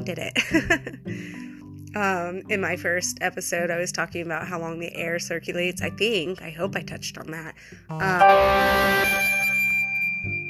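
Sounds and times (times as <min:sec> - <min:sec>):
speech: 0:00.0 - 0:01.4, 0:02.0 - 0:09.3
phone notification chime: 0:08.2 - 0:10.4.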